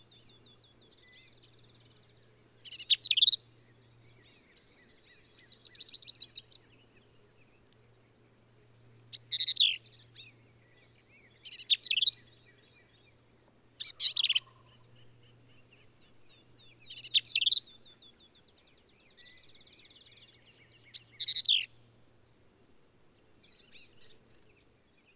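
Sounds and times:
male black-capped vireo singing sharp slurred notes in Texas hill country: 0:00.0 - 0:07.2, 0:09.1 - 0:13.1, 0:13.8 - 0:21.8
low background hum: 0:00.0 - 0:25.1.

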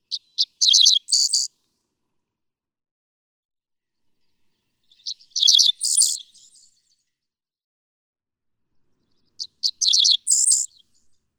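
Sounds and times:
Dickcissel singing in Ste. Genevieve Missouri: 0:00.1 - 0:01.5, 0:05.0 - 0:06.7, 0:09.4 - 0:10.8.

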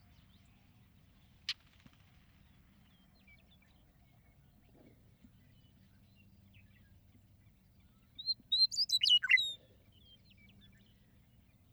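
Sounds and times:
Western meadowlark singing: 0:08.2 - 0:09.6.

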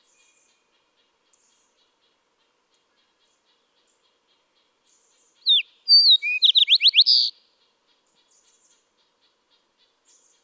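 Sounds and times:
Fox Sparrow singing a musical phrase: 0:05.5 - 0:07.3.

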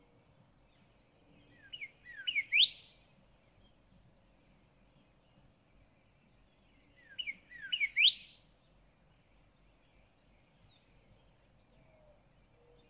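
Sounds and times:
northern cardinal singing slurred whistles: 0:01.6 - 0:02.8, 0:07.1 - 0:08.2.

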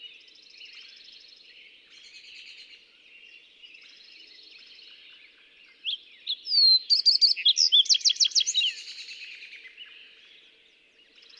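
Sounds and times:
fox sparrow singing a varied musical phrase: 0:05.9 - 0:09.0.

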